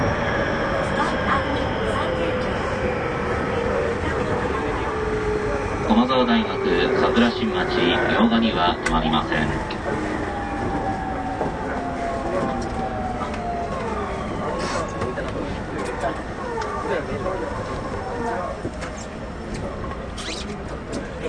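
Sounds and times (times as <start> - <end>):
rumble of wheels and motors inside a moving commuter train: 0.0 - 21.2
spoken train announcement: 0.5 - 18.6.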